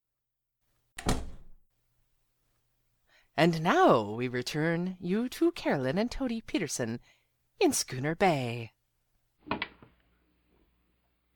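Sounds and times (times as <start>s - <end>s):
solid door closing: 1.0s - 1.6s
speech: 3.4s - 8.8s.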